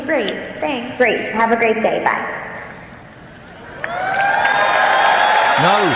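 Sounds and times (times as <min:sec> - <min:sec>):
speech: 0:00.1 - 0:02.7, 0:05.6 - 0:05.9
crowd applauding: 0:03.6 - 0:05.9.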